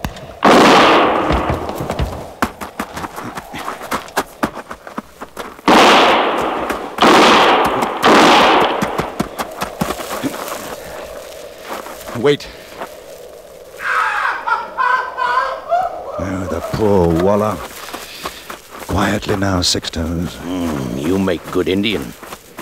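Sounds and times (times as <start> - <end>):
gunfire in an old western serial: 0.4 - 2.1, 5.6 - 10.0
rapid clatter of hoofbeats: 0.8 - 12.2, 16.2 - 22.6
speech: 12.2 - 12.6, 16.8 - 17.7, 19.0 - 22.2
laughter: 14.1 - 17.2.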